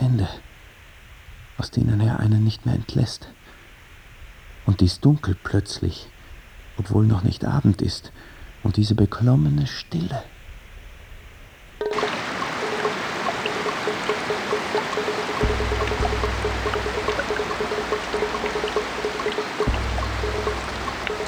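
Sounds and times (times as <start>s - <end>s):
speech: 1.6s - 3.4s, 4.7s - 6.1s, 6.8s - 10.3s
heavy rain drumming on leaves: 11.8s - 21.2s
low rumble: 15.4s - 21.2s.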